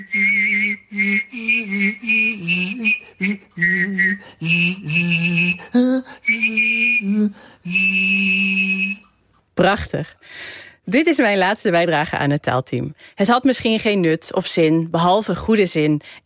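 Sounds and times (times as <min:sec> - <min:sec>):
speech: 0:00.0 - 0:01.1, 0:09.6 - 0:10.2, 0:10.9 - 0:16.2
person humming a low vocal line: 0:00.0 - 0:09.2
person whistling: 0:00.0 - 0:09.2.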